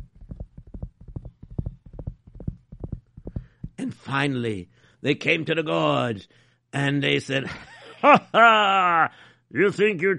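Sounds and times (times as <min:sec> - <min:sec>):
horses galloping: 0:00.0 - 0:03.8
speech: 0:03.8 - 0:10.1.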